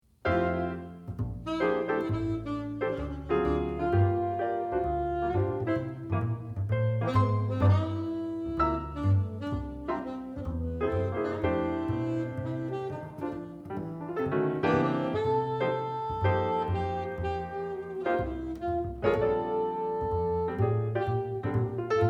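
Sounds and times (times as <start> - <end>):
jazz trio playing: 0.1 - 22.0.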